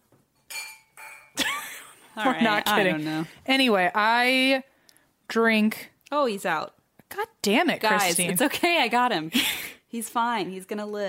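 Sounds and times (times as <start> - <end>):
wine glasses clinking together: 0.4 - 1.4
speech: 2.2 - 4.7, 5.3 - 11.0.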